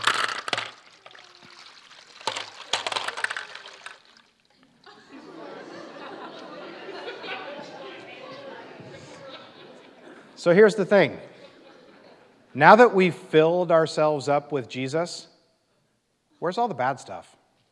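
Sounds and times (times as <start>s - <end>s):
sharp clatters: 0.0s - 4.3s
liquid pouring steadily into a container: 0.0s - 4.6s
laughter: 4.8s - 12.6s
speech: 10.4s - 11.3s, 12.6s - 15.3s, 16.4s - 17.4s.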